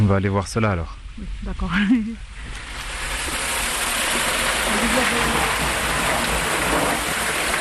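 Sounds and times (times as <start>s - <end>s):
speech: 0.0s - 2.7s
water flowing through an underground gallery toward a reservoir: 2.3s - 7.5s.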